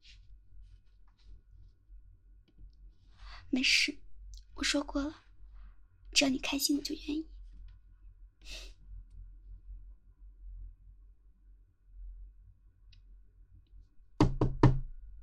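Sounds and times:
quiet hum: 0:00.0 - 0:14.2
speech: 0:03.5 - 0:04.0, 0:04.6 - 0:05.2, 0:06.2 - 0:07.4, 0:08.4 - 0:08.7
knocking on a door: 0:14.2 - 0:14.9.

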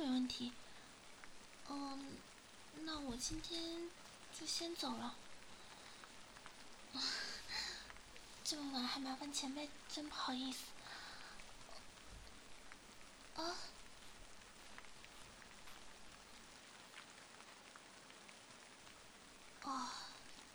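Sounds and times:
steady rain pattering outside: 0:00.0 - 0:20.5
speech: 0:00.3 - 0:00.7, 0:01.7 - 0:05.2, 0:06.9 - 0:07.2, 0:08.4 - 0:10.7, 0:13.4 - 0:13.7.

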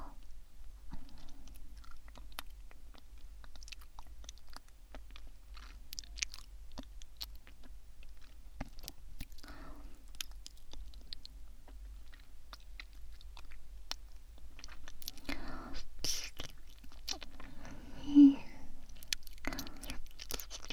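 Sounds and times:
chewing food: 0:00.2 - 0:17.8, 0:18.7 - 0:20.7
quiet breathy sounds: 0:09.4 - 0:10.1, 0:15.1 - 0:15.9, 0:17.3 - 0:20.1.

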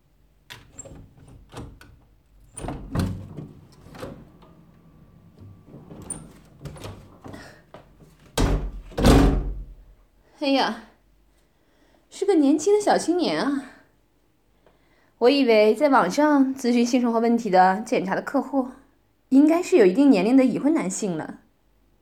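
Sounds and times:
door latch and handle clicks and rattles: 0:00.5 - 0:09.6
heavy door thumps as it swings open: 0:00.5 - 0:09.9
speech: 0:10.4 - 0:10.8, 0:12.4 - 0:13.7, 0:15.2 - 0:21.4.

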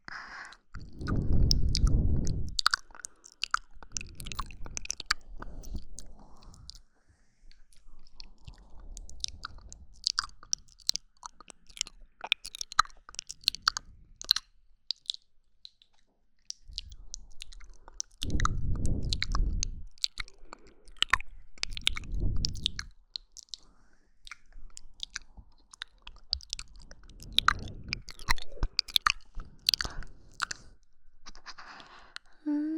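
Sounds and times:
wet mouth sounds: 0:00.0 - 0:06.9, 0:07.5 - 0:32.7
person chewing food: 0:00.4 - 0:32.4
crunching bites: 0:00.8 - 0:06.8, 0:08.4 - 0:30.7.

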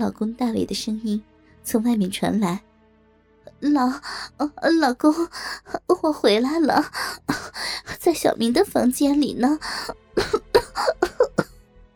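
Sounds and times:
speech: 0:00.0 - 0:02.7, 0:03.6 - 0:11.5
woman faking a cough: 0:10.2 - 0:11.5.

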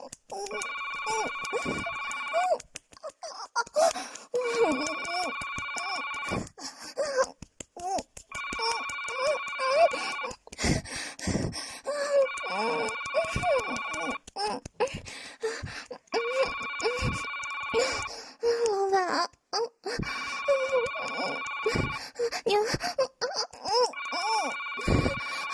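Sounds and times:
person making vocal sounds: 0:00.0 - 0:25.5
telephone ringing in electronic bursts: 0:00.5 - 0:02.4, 0:04.6 - 0:06.4, 0:08.3 - 0:10.3, 0:12.2 - 0:14.2, 0:16.2 - 0:18.1, 0:20.2 - 0:22.0, 0:23.9 - 0:25.5.

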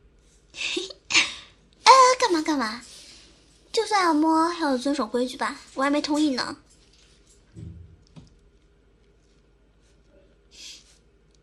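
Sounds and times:
speech: 0:02.5 - 0:02.9, 0:03.7 - 0:06.6
person sniffling while crying: 0:10.5 - 0:11.0.

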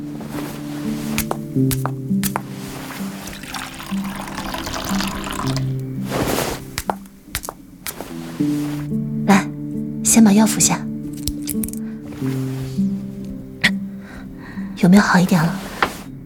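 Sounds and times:
soft sustained musical backdrop: 0:00.0 - 0:16.2
speech: 0:01.6 - 0:02.2, 0:10.2 - 0:10.9, 0:14.8 - 0:15.6
water pouring into a glass: 0:03.0 - 0:06.0.

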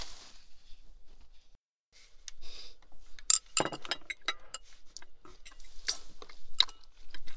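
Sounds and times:
glass or tableware clinking: 0:03.3 - 0:04.7
person chewing food during a meal: 0:04.2 - 0:07.3.

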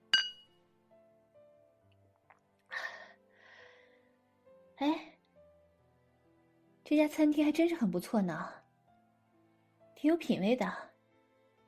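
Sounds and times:
glasses clinking during a toast: 0:00.2 - 0:00.5
speech: 0:04.8 - 0:05.0, 0:06.9 - 0:08.6, 0:10.0 - 0:10.9.

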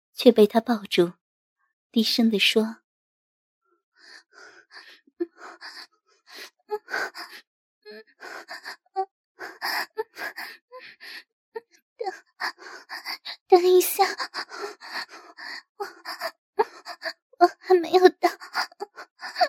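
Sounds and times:
speech: 0:00.2 - 0:01.2, 0:01.9 - 0:02.8, 0:05.4 - 0:11.3, 0:12.0 - 0:19.4
woman breathing rapidly and heavily: 0:04.0 - 0:11.3, 0:12.0 - 0:17.7, 0:18.3 - 0:19.4.

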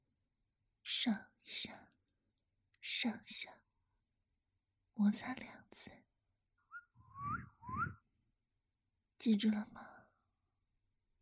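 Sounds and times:
speech: 0:05.0 - 0:06.0, 0:09.2 - 0:10.0
whistle blown as a signal to cue hand movements: 0:06.7 - 0:08.0.

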